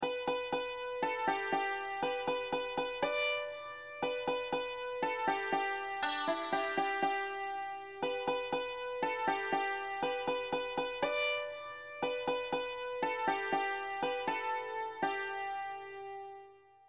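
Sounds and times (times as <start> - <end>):
five-string banjo playing a chorus melody: 0.0 - 16.6.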